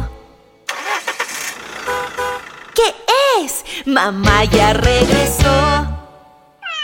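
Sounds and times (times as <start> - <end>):
car engine cranking and starting: 0.6 - 3.7
speech: 3.8 - 6.0.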